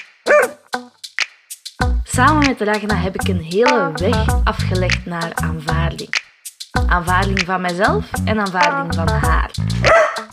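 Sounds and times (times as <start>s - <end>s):
pet dog barking with sharp yips: 0.3s - 0.6s, 9.9s - 10.3s
speech: 2.2s - 6.2s, 6.9s - 10.0s.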